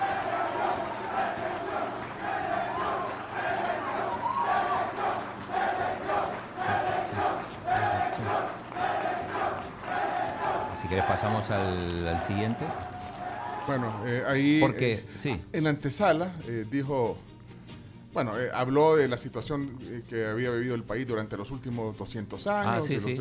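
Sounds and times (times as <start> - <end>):
large crowd cheering, applauding and shouting: 0.0 - 14.5
speech: 10.9 - 12.9, 13.7 - 17.3, 18.2 - 23.1.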